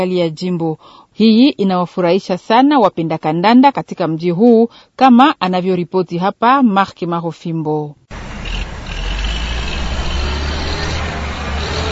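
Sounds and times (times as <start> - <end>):
speech: 0.0 - 8.0
compactors, levelers and loaders working on a football stadium diesel rumble: 8.1 - 10.8.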